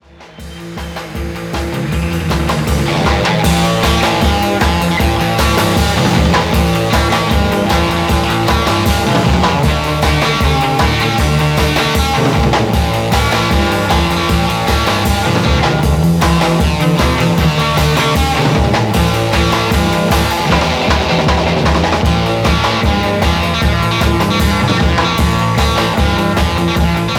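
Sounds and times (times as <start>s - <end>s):
stylus guitar instrument: 0.3s - 27.1s.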